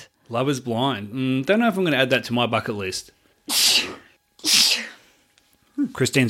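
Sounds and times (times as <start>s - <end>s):
speech: 0.3s - 3.6s, 5.8s - 6.2s
person sneezing: 3.5s - 5.1s.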